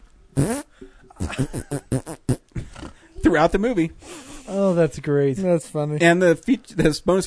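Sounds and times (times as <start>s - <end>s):
voices imitating fart sounds: 0.4s - 3.0s
speech: 1.3s - 2.1s, 3.3s - 7.2s.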